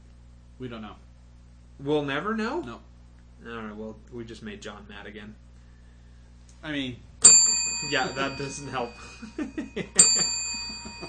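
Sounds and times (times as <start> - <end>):
speech: 0.6 - 1.1, 1.8 - 5.5, 6.6 - 11.0
small bell ringing: 7.2 - 11.0
soft rhythmic chuckling: 7.9 - 11.0.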